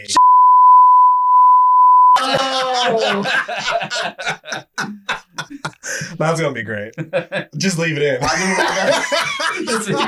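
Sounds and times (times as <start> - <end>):
censor bleep tone: 0.2 - 2.2
people chuckling and snickering: 2.2 - 6.2, 7.0 - 10.0
speech: 2.9 - 4.7, 6.2 - 10.0.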